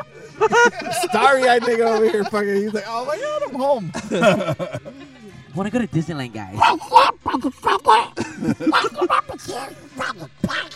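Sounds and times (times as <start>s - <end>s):
laughter: 0.0s - 5.6s, 6.5s - 10.7s
speech: 0.4s - 10.7s
person imitating a cartoon duck voice: 6.6s - 8.2s, 10.0s - 10.7s.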